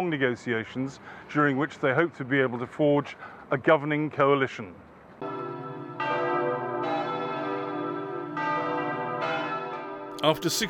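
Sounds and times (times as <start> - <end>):
speech: 0.0 - 5.3, 10.2 - 10.6
church bells ringing: 5.2 - 10.6.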